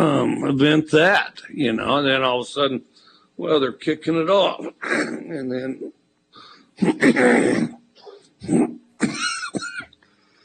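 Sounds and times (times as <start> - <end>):
speech: 0.0 - 6.0, 6.8 - 7.8, 8.4 - 9.7
person coughing loudly and raspily: 4.6 - 5.4, 6.8 - 9.9.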